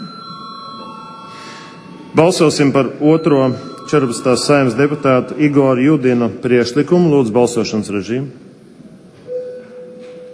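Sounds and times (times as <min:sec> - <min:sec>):
electric call bell ringing in the Latvian parliament calling deputies to a vote: 0:00.0 - 0:06.4
speech: 0:02.2 - 0:08.4.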